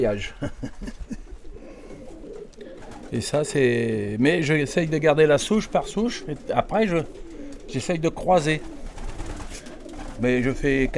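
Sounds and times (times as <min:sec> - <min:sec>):
speech: 0:00.0 - 0:00.9, 0:03.1 - 0:08.8, 0:10.2 - 0:10.9
laughter: 0:00.0 - 0:01.4
pigeon from Belgium cooing: 0:00.0 - 0:10.9
faint rustling: 0:00.6 - 0:10.8.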